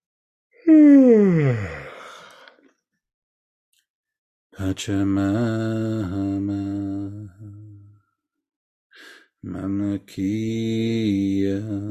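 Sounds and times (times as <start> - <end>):
person yawning: 0.6 - 2.5
speech: 0.7 - 1.8, 4.6 - 7.6, 9.4 - 11.8.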